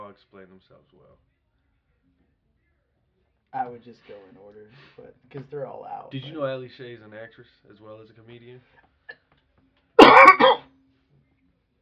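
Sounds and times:
speech: 0.1s - 1.4s, 3.5s - 8.9s
harsh throaty cough: 10.0s - 10.7s.

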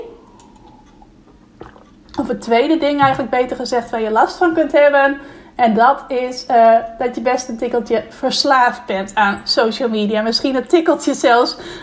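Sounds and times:
person sipping water: 0.2s - 2.2s
swallowing: 0.3s - 2.2s
speech: 2.2s - 11.8s.

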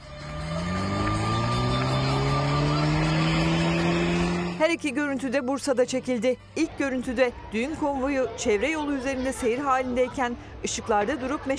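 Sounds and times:
car engine roar during a burnout: 0.0s - 4.6s
car tires squealing during a burnout on the Bursa–Mudanya road in Bursa: 0.0s - 4.6s
speech: 4.6s - 11.5s.

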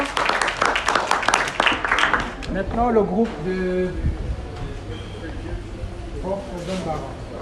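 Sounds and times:
audience applause: 0.0s - 2.5s
speech: 2.6s - 4.2s, 6.3s - 7.3s.

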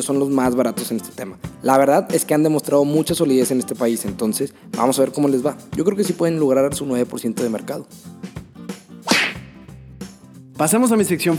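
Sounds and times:
speech: 0.0s - 8.4s, 10.6s - 11.3s
soft steady musical background: 0.0s - 11.3s
loud sharp slap sound effect with swishing tail: 9.0s - 9.5s.

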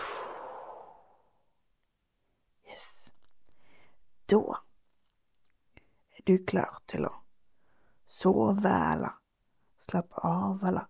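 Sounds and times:
soft breathy exhale: 0.0s - 1.3s
speech: 4.3s - 4.6s, 6.2s - 7.2s, 8.1s - 9.2s, 9.8s - 10.8s.

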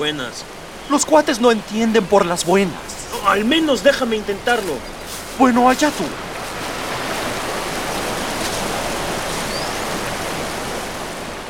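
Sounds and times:
speech: 0.0s - 6.2s
large river rushing over foaming rapids in a deep ravine: 0.0s - 11.4s.

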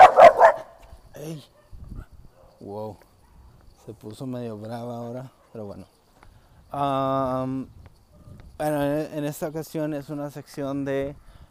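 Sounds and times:
small female dog yapping on a walk: 0.0s - 0.8s
speech: 2.7s - 3.1s, 3.9s - 6.0s, 6.7s - 7.8s, 8.6s - 11.2s.

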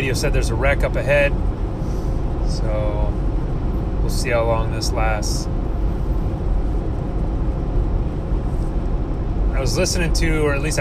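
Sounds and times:
car cruising on a highway at just under 70 mph: 0.0s - 10.7s
speech: 0.1s - 3.3s, 4.1s - 5.6s, 9.6s - 10.7s.

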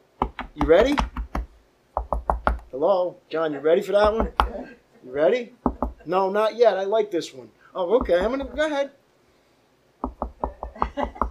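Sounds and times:
knocking on a door: 0.2s - 2.7s, 4.0s - 4.6s, 5.6s - 6.0s, 8.0s - 8.7s, 10.0s - 11.3s
speech: 0.6s - 1.2s, 2.8s - 9.0s.

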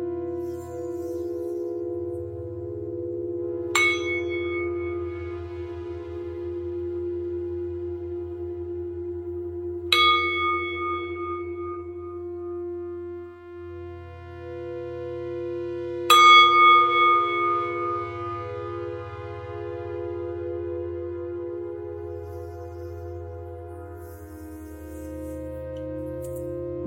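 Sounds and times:
low steady drone: 0.0s - 26.8s
meditation bell ringing: 3.6s - 5.6s, 9.9s - 12.7s, 16.1s - 18.9s.

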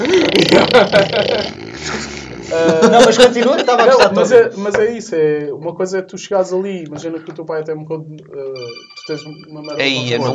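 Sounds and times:
speech: 0.0s - 1.5s, 2.5s - 10.3s
laughter: 0.0s - 4.6s
mobile phone ringing with a steady electronic ringtone: 8.6s - 10.3s.

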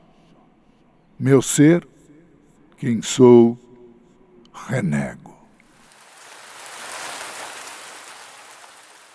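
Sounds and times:
speech: 1.2s - 1.9s, 2.8s - 3.6s, 4.6s - 5.3s
rain falling: 5.8s - 9.1s.

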